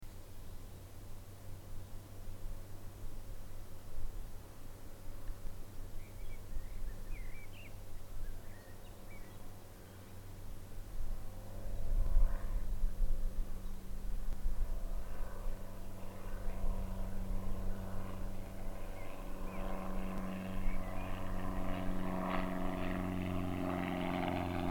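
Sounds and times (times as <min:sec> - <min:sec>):
propeller plane: 0:00.0 - 0:24.6
birds singing: 0:06.0 - 0:10.1, 0:18.8 - 0:21.8.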